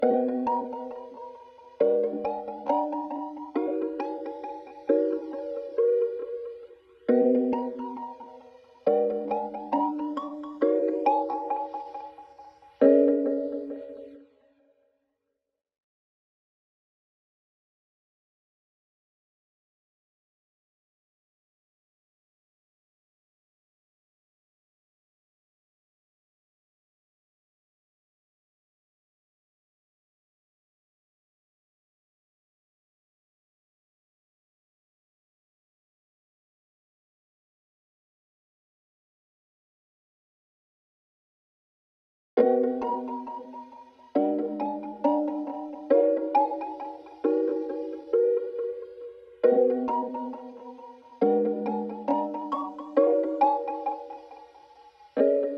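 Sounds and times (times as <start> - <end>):
C# minor mallet melody: 0.0 - 14.2, 42.4 - 55.5.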